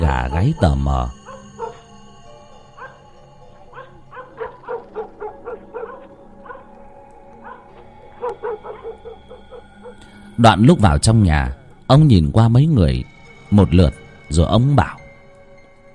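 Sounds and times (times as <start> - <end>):
speech: 0.0 - 1.2, 10.4 - 15.0
two house dogs barking at night: 0.0 - 10.1.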